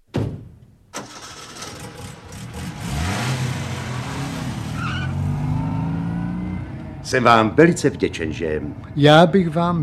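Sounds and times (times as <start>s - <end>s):
sharp thump: 0.0s - 0.6s
early motor car engine starting up and driving off: 1.0s - 9.2s
speech: 7.1s - 9.8s.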